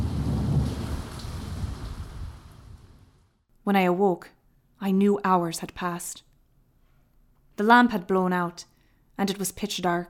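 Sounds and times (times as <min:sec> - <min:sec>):
dense rain hissing in a thunderstorm: 0:00.0 - 0:03.2
thunder rumbling in a thunderstorm: 0:00.0 - 0:03.4
speech: 0:03.7 - 0:06.3, 0:07.6 - 0:10.0.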